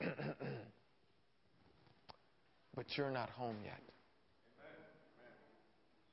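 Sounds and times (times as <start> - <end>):
man imitating clearing his throat: 0.0 - 0.8
speech: 2.8 - 4.0.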